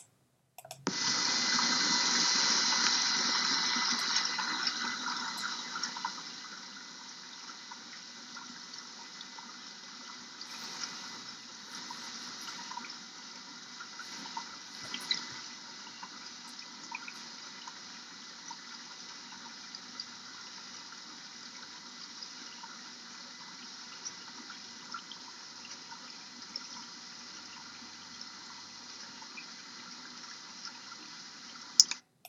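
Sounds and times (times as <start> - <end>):
dishwasher running on normal quiet cycle: 1.0 - 6.8, 10.4 - 18.7.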